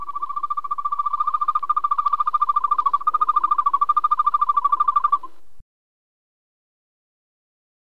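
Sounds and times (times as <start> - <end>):
European green toad sustained rapid pulsed trill: 0.0 - 5.3.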